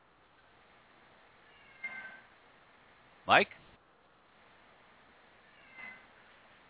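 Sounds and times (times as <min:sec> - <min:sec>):
low hiss: 0:00.0 - 0:06.6
cat meowing: 0:01.4 - 0:02.2, 0:05.4 - 0:06.1
speech: 0:03.3 - 0:03.6.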